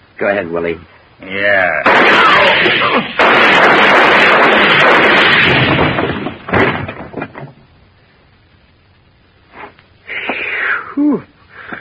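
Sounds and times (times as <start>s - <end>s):
speech: 0.2s - 6.0s
gunshots from a gun held against a post: 1.8s - 7.0s
scattered knocks: 3.6s - 7.6s.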